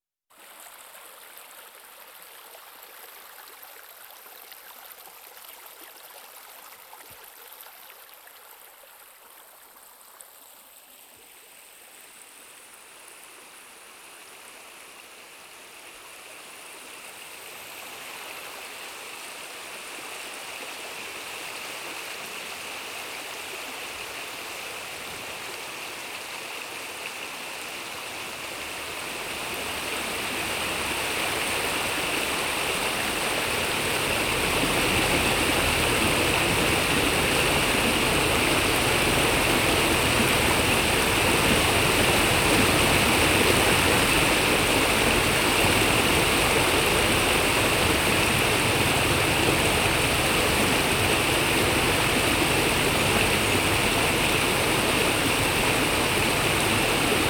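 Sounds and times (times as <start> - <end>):
calm river swelling into a flood: 11.6 - 57.2.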